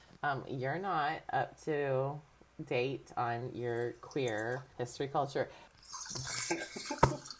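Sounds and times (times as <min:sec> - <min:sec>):
speech: 0:00.2 - 0:07.0
wine pouring and trickling: 0:03.6 - 0:04.8, 0:05.8 - 0:07.3.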